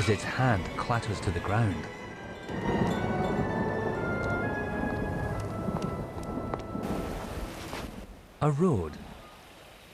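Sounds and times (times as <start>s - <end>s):
speech: 0.0s - 3.0s, 8.4s - 9.0s
thunder rumbling: 2.5s - 8.2s
heavy rain: 2.5s - 9.9s.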